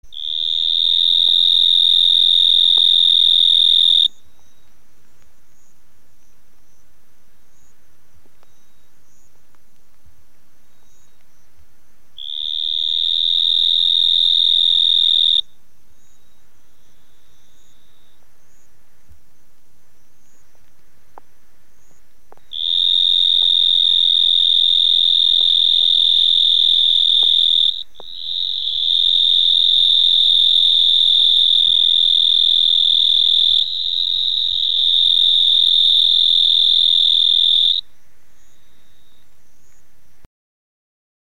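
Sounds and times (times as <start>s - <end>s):
Hemisus marmoratus calling: 0.1s - 4.2s, 12.2s - 15.6s, 21.9s - 39.8s.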